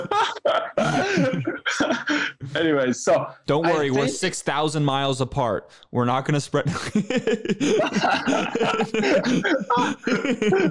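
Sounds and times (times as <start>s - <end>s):
harsh raspy throaty coughing: 0.0s - 2.4s, 7.6s - 10.6s
laughter: 0.0s - 2.5s, 6.6s - 10.6s
speech: 2.6s - 10.6s.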